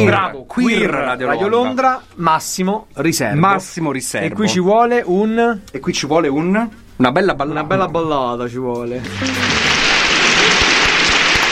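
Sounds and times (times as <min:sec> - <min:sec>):
speech: 0:00.0 - 0:09.8
crowd applauding: 0:09.0 - 0:11.5.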